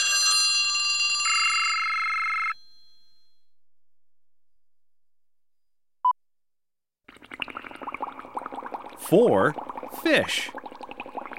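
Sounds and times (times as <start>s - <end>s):
telephone with a loud bright bell-like ring: 0.0s - 3.4s
speech: 9.1s - 10.6s.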